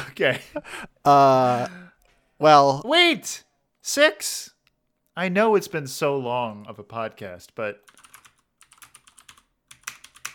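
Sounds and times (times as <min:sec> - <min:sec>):
speech: 0:00.2 - 0:04.5, 0:05.2 - 0:08.0
typing on a computer keyboard: 0:07.8 - 0:10.3.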